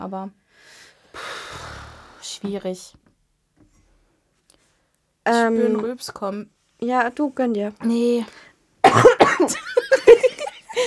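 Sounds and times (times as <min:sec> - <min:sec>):
speech: 0:00.0 - 0:00.8, 0:02.4 - 0:03.1, 0:05.2 - 0:10.8
voiced throaty sounds: 0:01.2 - 0:02.5
person coughing harshly: 0:08.8 - 0:09.6
laughter: 0:09.5 - 0:10.8.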